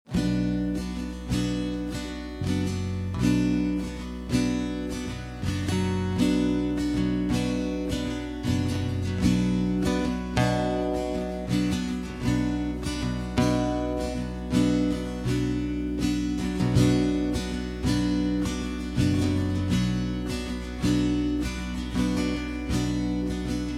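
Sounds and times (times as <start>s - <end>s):
B minor backing track without lead guitar: 0.0s - 23.7s.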